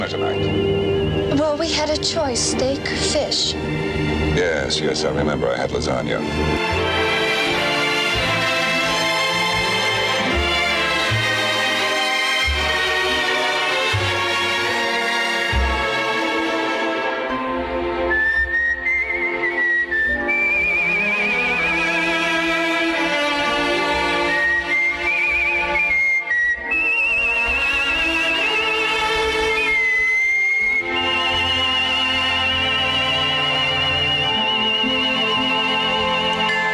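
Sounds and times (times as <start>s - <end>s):
full orchestral accompaniment: 0.0s - 36.7s
speech: 0.1s - 0.5s, 1.4s - 7.2s
person whistling a lilting melody: 18.0s - 21.7s, 24.2s - 36.7s.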